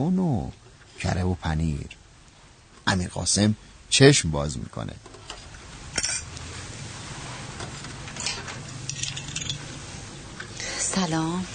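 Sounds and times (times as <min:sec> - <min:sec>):
speech: 0:00.0 - 0:02.0, 0:02.9 - 0:05.2, 0:11.0 - 0:11.5
breakfast tray with dishes clinking as it is set down: 0:06.0 - 0:06.3, 0:07.6 - 0:09.7.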